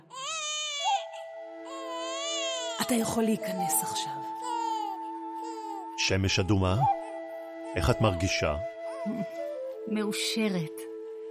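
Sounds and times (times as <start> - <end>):
newborn baby crying: 0.0 - 6.1, 6.8 - 9.5
speech: 2.9 - 4.5, 6.0 - 7.0, 7.7 - 10.9.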